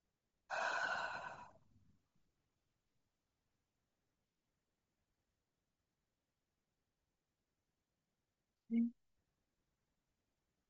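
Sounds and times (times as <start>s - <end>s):
single deep breath exhale: 0.5s - 1.6s.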